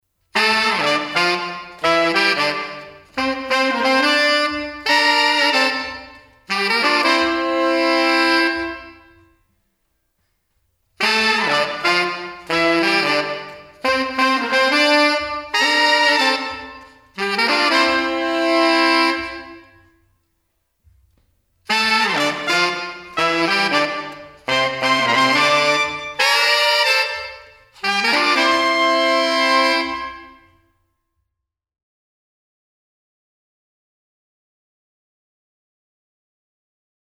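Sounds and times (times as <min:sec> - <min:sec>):
horn section with LXP plate reverb: 0:00.4 - 0:09.4, 0:11.0 - 0:20.0, 0:21.7 - 0:30.6.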